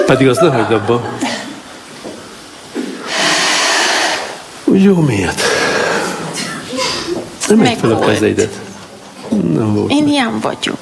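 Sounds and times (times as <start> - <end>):
speech: 0.1 - 1.4, 4.8 - 5.5, 7.5 - 8.6, 9.3 - 10.8
heavy puffing breath through the nose: 3.0 - 4.5.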